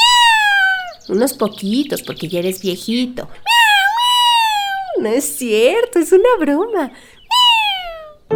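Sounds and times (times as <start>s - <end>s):
cat meowing: 0.0s - 1.0s, 3.5s - 5.0s, 7.3s - 8.2s
speech: 1.1s - 3.5s, 5.0s - 7.2s.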